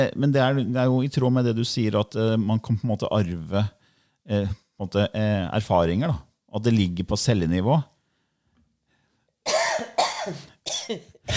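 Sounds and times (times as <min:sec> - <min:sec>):
speech: 0:00.0 - 0:07.9, 0:10.3 - 0:11.3
person coughing: 0:09.4 - 0:11.3.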